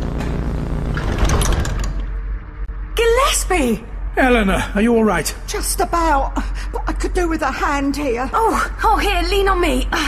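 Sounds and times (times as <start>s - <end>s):
sliding door to the primary unit chamber opening with mechanical hum: 0.1s - 2.4s
speech: 3.5s - 10.0s.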